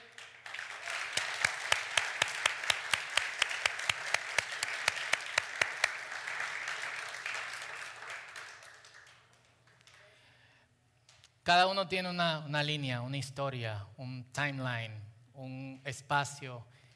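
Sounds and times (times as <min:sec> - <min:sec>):
audience applauding loudly: 0:00.0 - 0:10.2
crisp evenly spaced rhythmic claps: 0:00.0 - 0:10.2
speech: 0:11.5 - 0:16.8.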